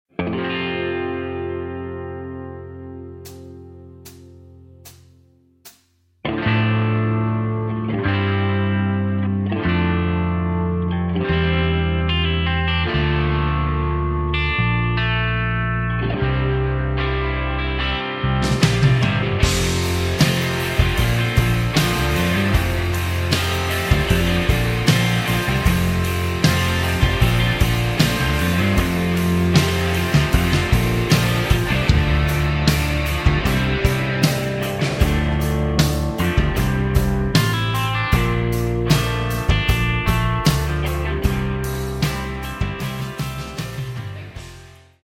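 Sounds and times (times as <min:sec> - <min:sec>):
music without backing vocals: 0:00.1 - 0:45.0.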